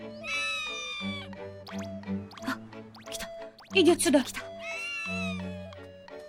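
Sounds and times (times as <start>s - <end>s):
cat giving a drawn-out wavering meow: 0.1s - 1.4s, 4.5s - 5.8s
speech: 3.7s - 4.5s.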